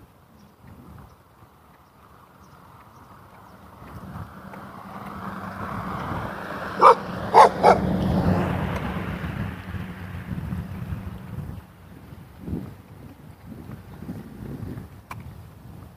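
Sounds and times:
outdoor wind on a muggy, cloudy day: 0.0s - 15.9s
low engine-like noise: 1.6s - 14.8s
dog barking: 6.8s - 7.9s.

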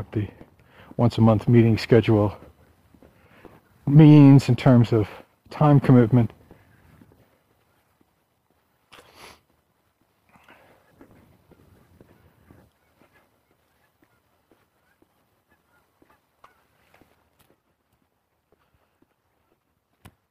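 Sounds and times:
speech: 0.0s - 0.4s, 1.0s - 2.5s, 3.9s - 6.4s
geese honking outdoors: 10.4s - 19.7s.

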